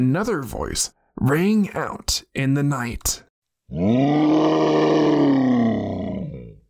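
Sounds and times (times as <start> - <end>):
speech: 0.0 - 5.4
deep animal roar: 3.7 - 6.6.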